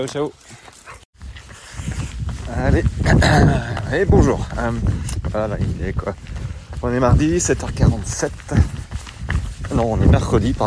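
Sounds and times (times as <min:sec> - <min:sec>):
speech: 0:00.0 - 0:00.6, 0:02.5 - 0:08.7, 0:09.7 - 0:10.6
dog paws scuffling and thumping: 0:00.0 - 0:10.6.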